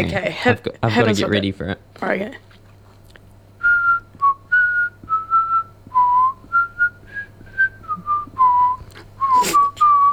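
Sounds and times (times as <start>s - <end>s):
speech: 0.0s - 2.5s
person whistling the chorus of a song: 3.6s - 10.1s
breathy noise: 6.6s - 10.1s.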